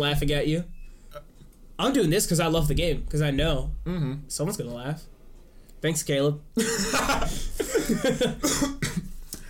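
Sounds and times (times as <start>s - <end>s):
speech: 0.0s - 5.1s, 5.8s - 8.8s
harsh raspy coughs: 6.6s - 9.2s.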